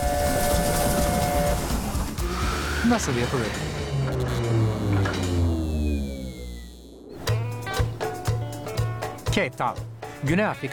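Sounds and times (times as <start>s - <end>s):
steady whistle-like tone of a steam train: 0.0s - 1.9s
steam train rumbling along a 100-year-old line in South Africa: 0.0s - 4.0s
low rhythmic chugging of a steam train: 0.0s - 10.7s
speech: 2.9s - 3.8s, 9.4s - 10.7s.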